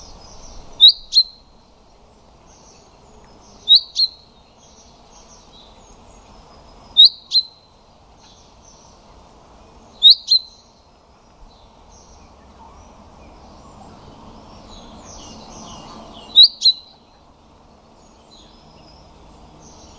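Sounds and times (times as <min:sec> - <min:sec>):
common chaffinch giving paired sharp pink notes: 0:00.0 - 0:01.5, 0:02.5 - 0:04.3, 0:06.9 - 0:08.8, 0:10.0 - 0:10.7, 0:12.0 - 0:17.2.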